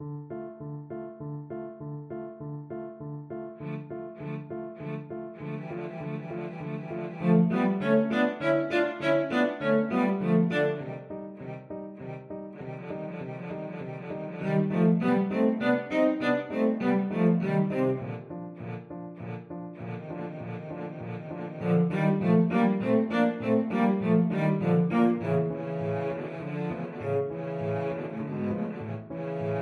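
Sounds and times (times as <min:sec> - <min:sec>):
cello duet: 0:03.4 - 0:29.5.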